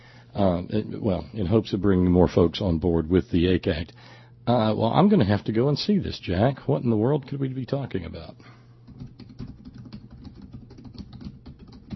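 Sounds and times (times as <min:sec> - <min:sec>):
speech: 0:00.4 - 0:08.6
rapid typing on a loud computer keyboard: 0:08.9 - 0:11.9.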